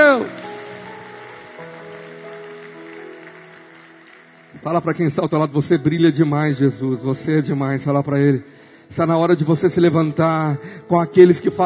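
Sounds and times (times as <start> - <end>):
audience applauding: 0.0 - 5.4
speech: 4.6 - 11.6.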